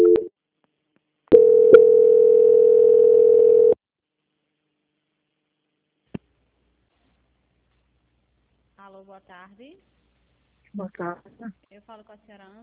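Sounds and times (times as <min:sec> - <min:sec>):
telephone line tone during a call transfer: 0:00.0 - 0:00.3, 0:01.3 - 0:03.8
telephone line click: 0:01.3 - 0:03.8
speech: 0:09.0 - 0:10.0, 0:10.7 - 0:12.6.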